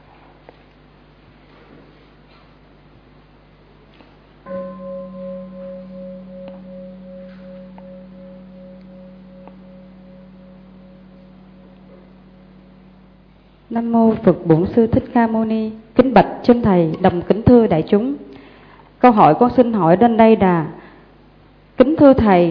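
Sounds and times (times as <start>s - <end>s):
single deep bell struck and ringing: 4.5s - 14.9s
speech: 13.7s - 18.2s, 19.0s - 20.8s, 21.8s - 22.5s.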